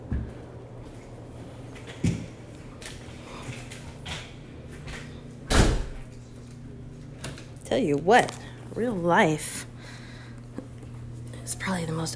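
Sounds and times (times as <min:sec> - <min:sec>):
door opening and closing: 0:05.5 - 0:06.1
speech: 0:07.7 - 0:09.6, 0:11.7 - 0:12.1.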